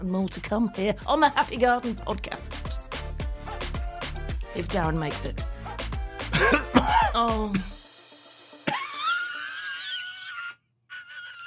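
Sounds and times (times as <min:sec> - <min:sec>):
speech: 0:00.0 - 0:02.8, 0:04.6 - 0:05.5, 0:07.1 - 0:07.8
loud coughing mixed with laughter: 0:06.2 - 0:07.7, 0:08.6 - 0:11.4
thin high wheezing squeal: 0:08.8 - 0:11.4.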